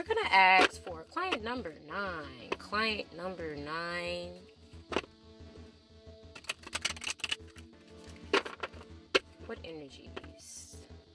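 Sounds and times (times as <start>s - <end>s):
soft steady musical hum: 0.0s - 11.1s
speech: 0.3s - 5.0s, 9.5s - 10.8s
deck of cards being shuffled for a reading: 6.4s - 9.0s.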